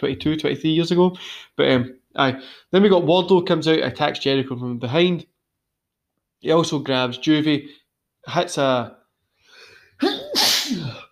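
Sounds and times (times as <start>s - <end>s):
speech: 0.0s - 5.3s, 6.4s - 9.0s, 10.0s - 10.4s
single loud sneeze: 10.0s - 11.1s.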